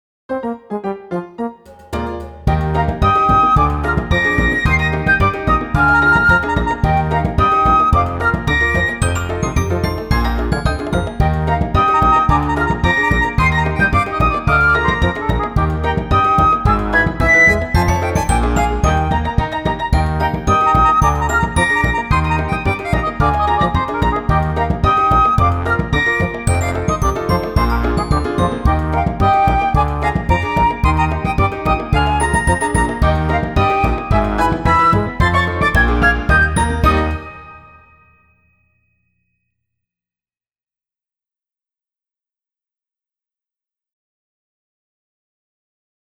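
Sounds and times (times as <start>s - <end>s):
continuous jumping: 1.7s - 37.8s.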